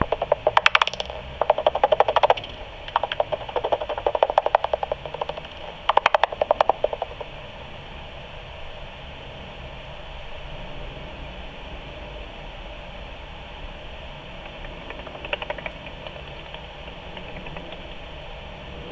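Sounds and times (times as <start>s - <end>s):
common pipistrelle echolocation calls at 45kHz at front window: 0.0s - 8.0s, 13.6s - 18.9s.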